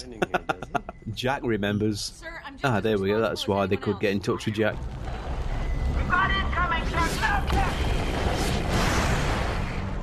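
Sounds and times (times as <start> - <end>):
speech: 0.0 - 0.5, 1.2 - 5.0
laughter: 0.0 - 1.0
big explosion with crackling debris: 4.8 - 10.0.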